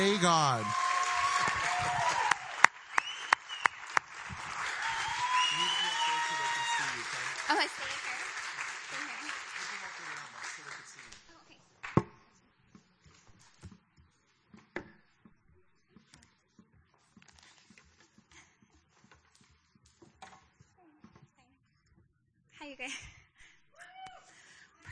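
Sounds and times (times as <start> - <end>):
speech: 0.0 - 0.8
voices cheering and calling out: 0.0 - 9.4
crowd clapping: 0.0 - 12.0.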